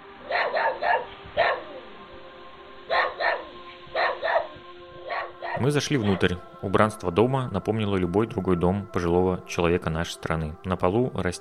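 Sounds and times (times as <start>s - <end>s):
dog barking: 0.2s - 1.9s, 2.9s - 6.2s
speech: 5.6s - 11.4s.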